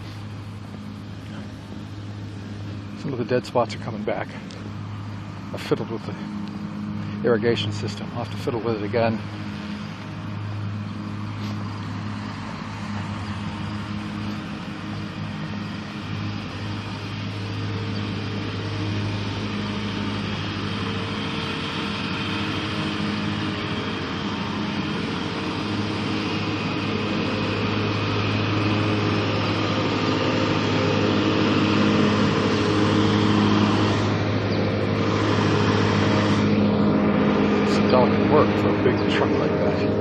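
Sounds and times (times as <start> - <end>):
lawn mower engine running while mowing around a parking lot: 0.0 - 39.9
speech: 3.0 - 4.6, 5.5 - 6.4, 7.2 - 9.6.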